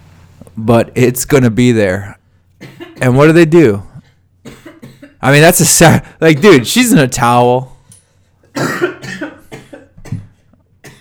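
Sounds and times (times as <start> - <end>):
speech: 0.6 - 3.9, 5.2 - 7.7
man coughing in a harsh fit: 2.6 - 3.2, 4.4 - 5.2, 6.0 - 7.0, 8.5 - 10.9.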